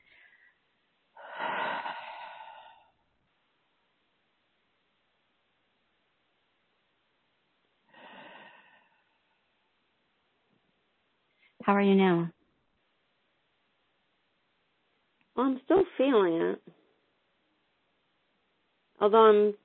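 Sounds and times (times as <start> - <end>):
deep breath: 0.0 - 0.6, 1.2 - 3.1, 7.8 - 9.6
speech: 11.6 - 12.4, 15.4 - 16.8, 19.0 - 19.6.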